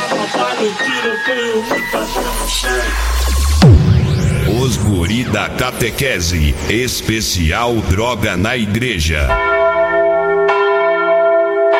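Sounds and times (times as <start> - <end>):
speech: 0.6 - 3.8, 4.6 - 9.5
church bell ringing for the start of catechism class: 9.4 - 11.7.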